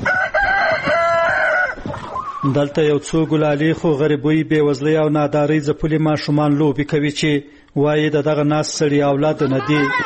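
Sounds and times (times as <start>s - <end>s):
roosters crowing in a house courtyard: 0.0s - 2.6s
chickens clucking in a house courtyard: 0.0s - 3.4s
speech: 2.4s - 10.0s.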